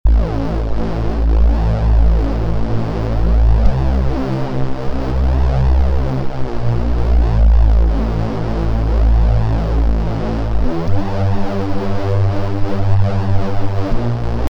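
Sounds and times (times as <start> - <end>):
bass pad: 0.0 - 14.5.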